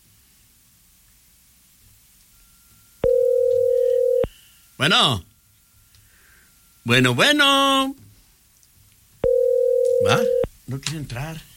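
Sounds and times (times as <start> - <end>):
telephone line tone when answering a call: 2.3 - 4.4, 9.2 - 10.5
speech: 4.8 - 5.3, 6.8 - 8.0, 10.0 - 11.5.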